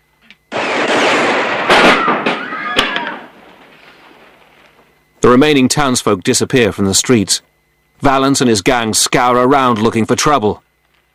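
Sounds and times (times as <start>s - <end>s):
gunfire shooting a painted sign to pieces in a Western town street: 0.5s - 3.8s
speech: 5.2s - 10.6s.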